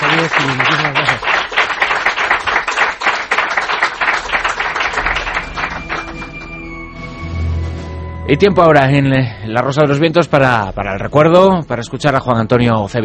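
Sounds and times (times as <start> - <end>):
studio audience applause for a radio guest: 0.0 - 6.8
speech: 0.2 - 1.3, 8.3 - 13.0.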